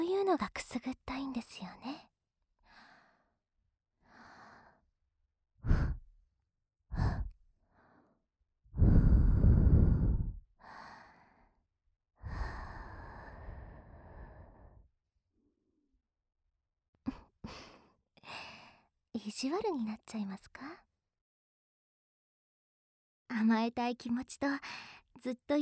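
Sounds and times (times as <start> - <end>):
speech: 0.3 - 2.0, 19.2 - 20.9, 23.3 - 25.6
soft breathy sighs and exhales: 2.0 - 3.4, 4.0 - 4.8, 5.6 - 6.1, 6.9 - 11.6, 12.2 - 14.9, 17.1 - 18.9.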